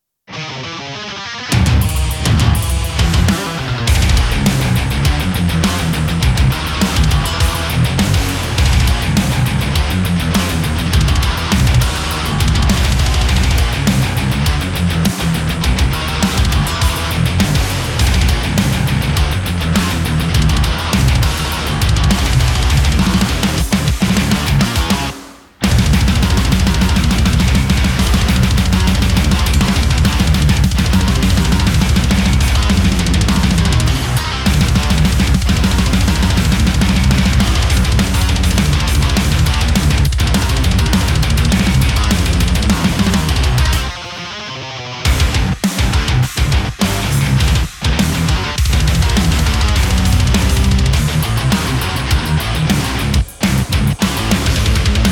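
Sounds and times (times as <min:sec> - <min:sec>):
high-gain electric guitar through a Kemper amp: 0:00.3 - 0:55.1.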